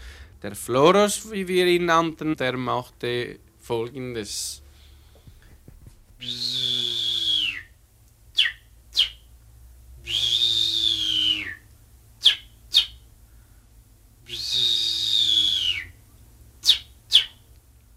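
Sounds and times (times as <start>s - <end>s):
speech: 0.4s - 4.6s, 6.2s - 6.7s
person whistling an imitation of a finch call to lure finches into nets: 6.2s - 7.8s, 8.4s - 9.2s, 10.0s - 13.0s, 14.3s - 16.0s, 16.6s - 17.4s.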